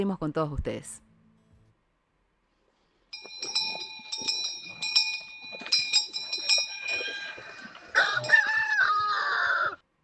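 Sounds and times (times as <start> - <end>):
speech: 0.0 - 1.1
bell ringing: 3.1 - 8.4
rooster crowing: 7.1 - 9.8.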